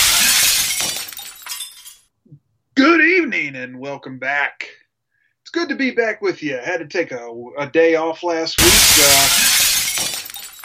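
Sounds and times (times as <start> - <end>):
glass shattering with tinkling fragments: 0.0 - 2.1, 8.6 - 10.6
speech: 3.2 - 4.7, 5.5 - 9.5.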